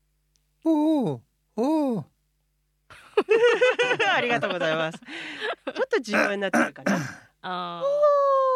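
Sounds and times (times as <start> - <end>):
person imitating owl hoots: 0.6 - 2.1
speech: 0.6 - 2.1, 4.0 - 8.2
laughter: 2.9 - 6.0.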